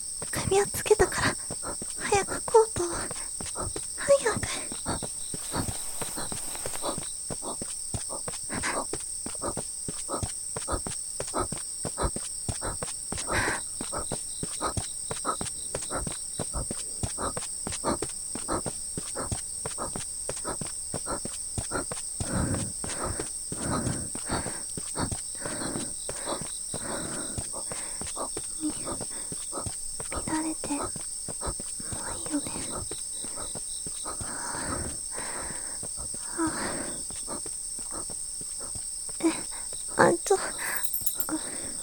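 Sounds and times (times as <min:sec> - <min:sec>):
crickets chirping: 0:00.0 - 0:41.8
footsteps crunching at a walking pace: 0:04.9 - 0:07.6.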